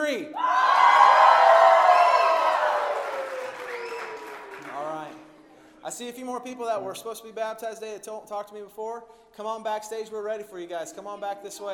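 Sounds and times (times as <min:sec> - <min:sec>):
speech: 0:00.1 - 0:00.5, 0:06.0 - 0:11.7
large audience cheering and whooping: 0:00.4 - 0:04.7.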